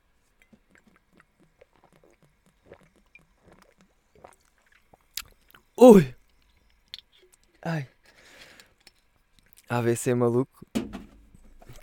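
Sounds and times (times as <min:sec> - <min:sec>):
gulping and swallowing sparkling mineral water from a bottle: 0:00.6 - 0:05.3
speech: 0:05.8 - 0:06.2, 0:09.7 - 0:10.7.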